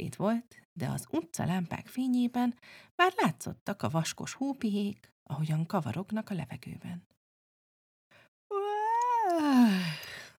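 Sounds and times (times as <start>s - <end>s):
speech: 0.1s - 7.1s, 9.4s - 10.1s
narrator performing a big yawn: 8.5s - 10.2s.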